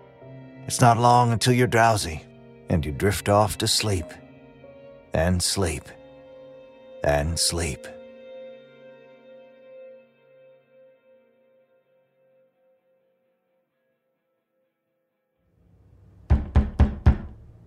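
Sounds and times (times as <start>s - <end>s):
speech: 0.7s - 4.2s, 5.1s - 6.0s, 7.0s - 8.0s
fist pounding on a door: 16.3s - 17.4s.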